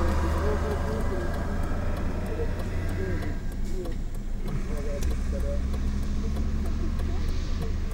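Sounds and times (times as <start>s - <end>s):
car engine idling: 0.0s - 7.9s
people talking: 0.0s - 7.9s.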